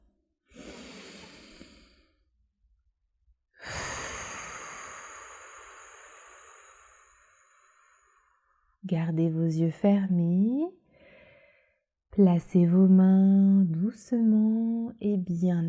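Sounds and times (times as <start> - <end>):
deep breath in and out: 0.5 - 2.4, 3.6 - 8.8, 10.8 - 11.9
speech: 8.9 - 10.8, 12.2 - 15.6.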